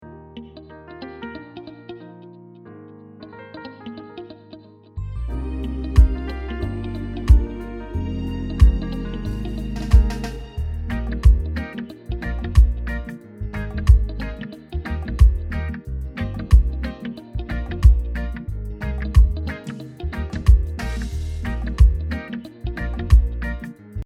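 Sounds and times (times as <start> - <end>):
reggae beat: 5.3 - 24.0.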